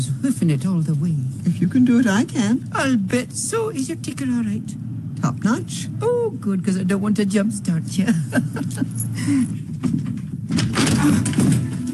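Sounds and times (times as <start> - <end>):
speech: 0.4 - 11.7
laughter: 8.0 - 9.5
door opening with rattling scraping clatter: 9.6 - 11.9.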